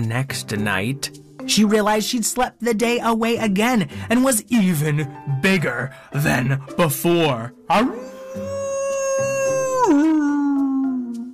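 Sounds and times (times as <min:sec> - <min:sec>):
speech: 0:00.0 - 0:08.5
big wolf howling: 0:07.7 - 0:11.0.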